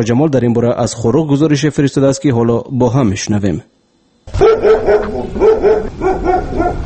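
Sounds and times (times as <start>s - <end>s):
speech: 0.0s - 6.8s
stray dogs barking in the streets and bazaars of Khorugh: 4.3s - 6.8s.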